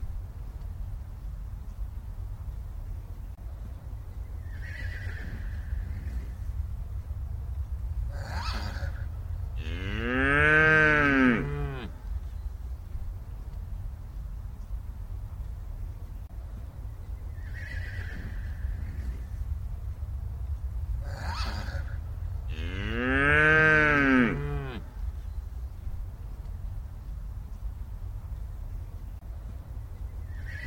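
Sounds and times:
steady low countryside rumble: 0.0s - 30.4s
cow mooing in the countryside: 9.6s - 12.0s, 22.5s - 24.9s.

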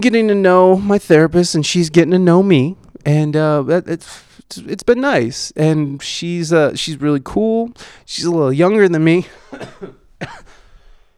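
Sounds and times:
speech: 0.0s - 10.5s
person coughing: 9.2s - 11.0s.

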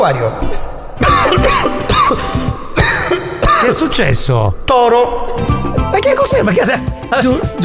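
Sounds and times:
speech: 0.0s - 7.6s
person coughing: 1.0s - 4.0s.

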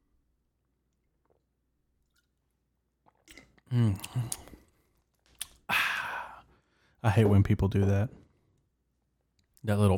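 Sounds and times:
person sipping a drink with slurp and swallow: 0.9s - 6.5s
speech: 3.7s - 4.5s, 7.0s - 8.2s, 9.6s - 9.9s.

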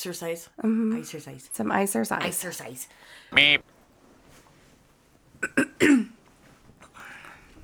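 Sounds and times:
speech: 0.0s - 3.8s, 5.4s - 6.1s
faint rustling hush: 3.6s - 5.4s, 6.2s - 7.6s
person clearing throat in harsh bursts: 5.4s - 6.2s.

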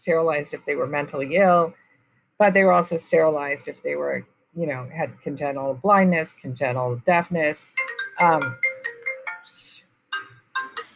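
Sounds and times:
speech: 0.0s - 1.8s, 2.4s - 8.7s
phone melodic ringtone: 7.8s - 10.9s.

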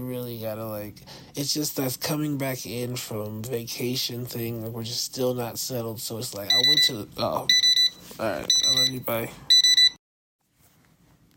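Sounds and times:
speech: 0.0s - 9.5s
electronic timer beep: 6.5s - 6.9s, 7.5s - 10.0s.

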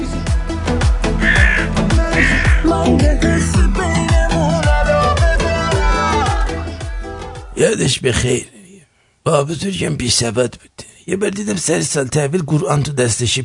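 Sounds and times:
dense steady rhythmic backdrop: 0.0s - 7.7s
crow cawing: 1.2s - 2.8s
speech: 7.6s - 8.6s, 9.2s - 13.4s.

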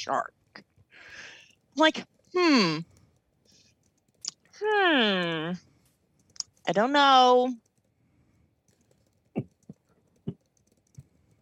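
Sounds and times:
speech: 0.0s - 3.0s, 4.6s - 5.7s, 6.7s - 7.6s
typing on a computer keyboard: 1.1s - 5.4s, 6.2s - 7.9s, 8.6s - 11.4s.

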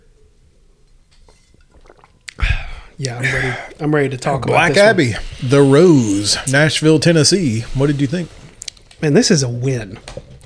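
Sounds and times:
person gulping a Belgian-style blonde ale: 1.2s - 6.6s
speech: 3.0s - 8.4s, 9.0s - 10.2s.

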